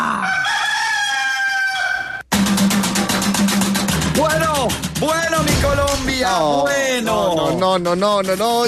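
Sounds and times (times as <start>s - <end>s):
rooster crowing: 0.2s - 2.3s
dense rhythmically pulsing noise: 2.3s - 8.6s
speech: 7.8s - 8.6s.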